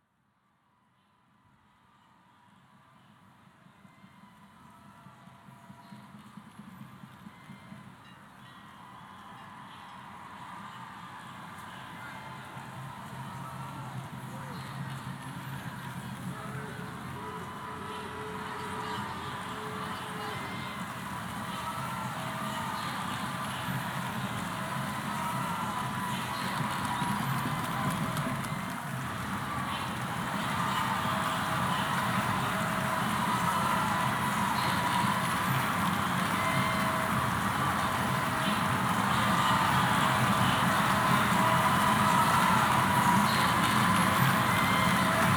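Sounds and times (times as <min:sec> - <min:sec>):
demonstrators chanting at peace demonstration in NYC: 0:16.2 - 0:45.3.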